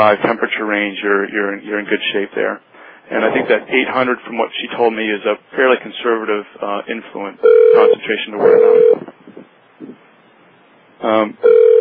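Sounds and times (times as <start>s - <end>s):
speech: 0.0s - 9.2s, 11.0s - 11.7s
faint low murmurs: 0.0s - 10.1s
telephone ringing over an internet seminar conference line: 7.4s - 9.0s, 11.4s - 11.7s.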